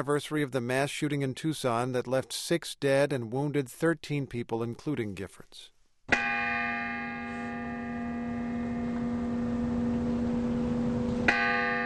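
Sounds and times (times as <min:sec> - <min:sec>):
speech: 0:00.0 - 0:06.2
large church bell tolling in Tucson in memory of mass shooting victims: 0:06.1 - 0:11.8.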